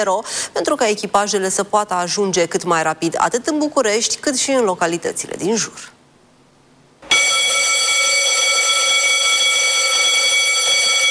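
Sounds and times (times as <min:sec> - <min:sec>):
speech: 0:00.0 - 0:06.0
fire station alarm for CBRN firefighter crews buzzing: 0:07.0 - 0:11.0.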